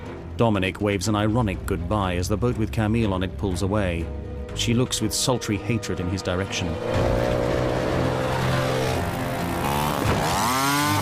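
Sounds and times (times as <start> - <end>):
speech: 0.4 - 7.5
motorcycle engine droning and revving as the bike is ridden through busy docks: 5.9 - 10.9.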